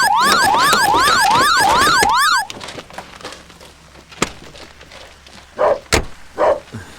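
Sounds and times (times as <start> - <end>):
Rolls-Royce car alarm set off by attempted theft wailing: 0.0 - 2.5
sharp clicks and thumps: 0.0 - 5.0.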